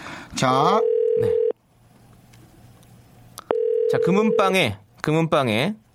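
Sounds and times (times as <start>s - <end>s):
speech: 0.4s - 1.4s, 3.9s - 5.8s
telephone ringback tone: 0.8s - 1.6s, 3.5s - 4.5s.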